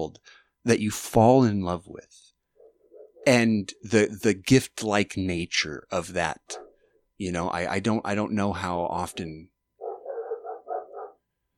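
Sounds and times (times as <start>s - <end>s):
speech: 0.0s - 2.2s, 3.2s - 9.5s
dog barking: 2.6s - 3.3s, 6.5s - 6.8s, 9.8s - 11.2s.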